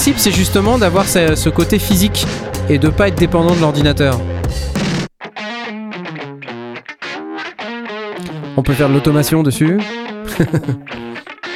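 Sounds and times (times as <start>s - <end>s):
speech: 0.0s - 4.7s, 8.6s - 11.0s
electric guitar through combined layered effects pedal: 0.0s - 11.5s
laughter: 10.2s - 11.2s.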